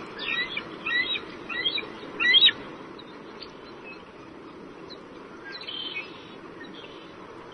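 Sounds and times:
steady low outdoor hum: 0.0 - 7.5
eagles calling to each other at nest: 0.2 - 2.6.

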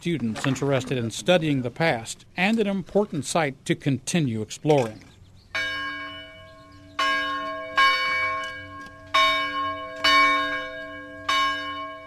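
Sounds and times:
speech: 0.0 - 5.1
church bell tolling at a restored Shaker village: 5.6 - 12.0.

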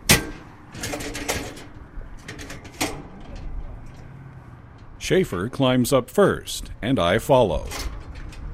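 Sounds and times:
sectional metal ladder pulled down from a ceiling hatch: 0.0 - 4.1, 7.6 - 8.5
speech: 5.1 - 7.9.

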